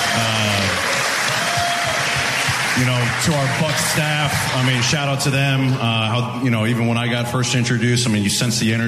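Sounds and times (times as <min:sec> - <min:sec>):
audience applauding at a community youth event: 0:00.0 - 0:06.1
speech: 0:02.8 - 0:08.8.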